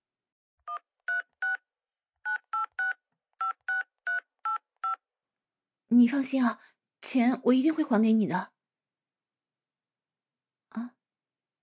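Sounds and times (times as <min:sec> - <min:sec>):
electronic keypad beeps as a phone number is dialed: 0:02.3 - 0:05.0
speech: 0:05.9 - 0:08.5.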